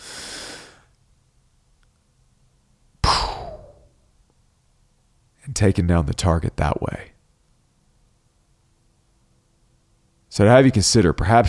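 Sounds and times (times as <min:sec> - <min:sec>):
deep breath: 0:00.0 - 0:00.9, 0:03.0 - 0:03.8
speech: 0:05.5 - 0:07.1, 0:10.4 - 0:11.4.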